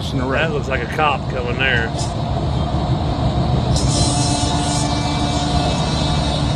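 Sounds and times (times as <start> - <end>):
loud continuous road rumble: 0.0 - 6.5
speech: 0.1 - 2.5
vehicle horn honking: 3.7 - 6.5.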